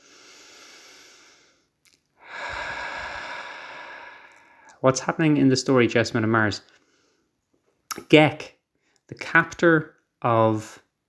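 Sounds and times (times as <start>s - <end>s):
person taking a breath, inhaling and exhaling: 0.0s - 4.8s
speech: 4.8s - 6.8s, 8.1s - 10.8s.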